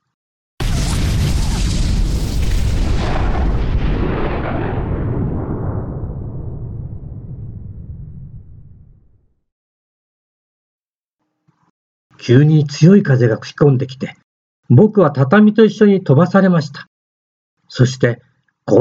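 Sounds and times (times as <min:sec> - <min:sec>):
atomic bomb explosion boom over Hiroshima: 0:00.6 - 0:09.4
heavy sustained low rumble of atomic bomb explosion: 0:00.7 - 0:09.4
speech: 0:12.2 - 0:16.9, 0:17.7 - 0:18.7.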